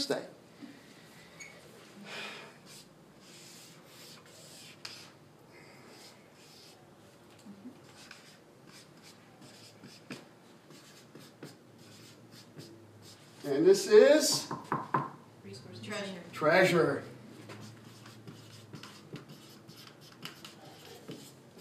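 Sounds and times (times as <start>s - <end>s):
speech: 0.0s - 0.4s, 13.5s - 14.7s, 16.0s - 17.1s
faint breathing: 0.5s - 2.7s
scratchy drawing strokes across a surface: 2.7s - 5.2s, 5.9s - 6.8s, 7.8s - 13.4s, 17.6s - 21.6s.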